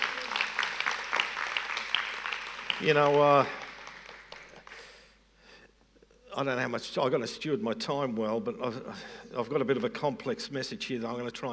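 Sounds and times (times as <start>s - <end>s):
large crowd clapping: 0.0s - 4.9s
speech: 2.8s - 3.6s, 6.4s - 11.5s.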